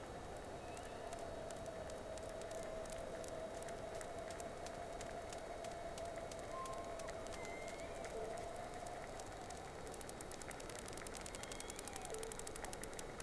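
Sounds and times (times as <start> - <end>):
sharp clicks underwater: 0.7 - 13.2
whale calls: 5.2 - 10.0, 11.1 - 12.7.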